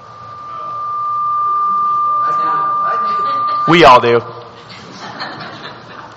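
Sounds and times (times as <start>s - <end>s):
high-pitched ringing tone: 0.0s - 4.7s
speech: 3.7s - 4.4s
laughter: 4.7s - 6.1s.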